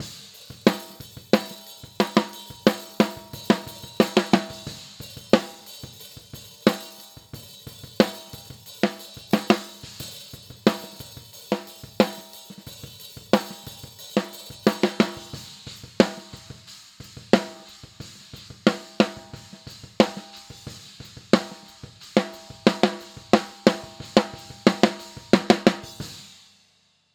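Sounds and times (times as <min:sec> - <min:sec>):
snare drum: 0:00.0 - 0:26.4.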